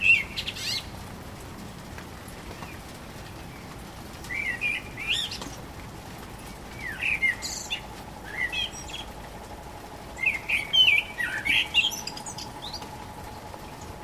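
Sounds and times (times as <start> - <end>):
Common blackbird song: 0.0 - 0.9, 2.5 - 5.6, 6.4 - 9.2, 10.1 - 14.0.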